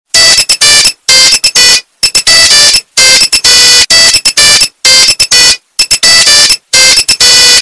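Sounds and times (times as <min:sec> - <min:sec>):
loud Nokia phone ringtone with bass: 0:00.1 - 0:07.5.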